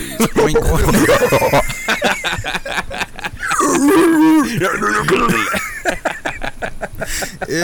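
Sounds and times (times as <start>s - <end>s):
laughter: 0.0s - 7.6s
person imitating an excited pig with snorting grunts and squeals: 0.2s - 1.6s, 3.4s - 5.8s, 7.4s - 7.6s
speech: 0.2s - 1.8s, 4.4s - 5.6s, 7.1s - 7.6s.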